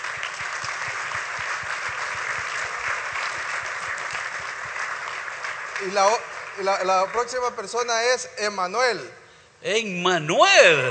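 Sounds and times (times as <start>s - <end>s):
audience applause: 0.0s - 7.9s
speech: 5.8s - 10.8s.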